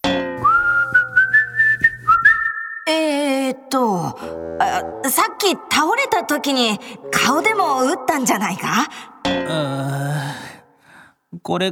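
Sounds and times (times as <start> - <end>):
person whistling a casual carefree wavering tune: 0.4 - 2.9
speech: 3.7 - 10.4, 11.3 - 11.7.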